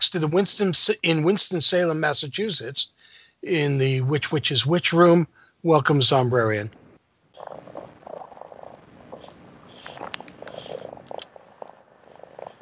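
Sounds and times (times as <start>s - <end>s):
speech: 0.1s - 6.8s
cat purring: 6.7s - 12.6s.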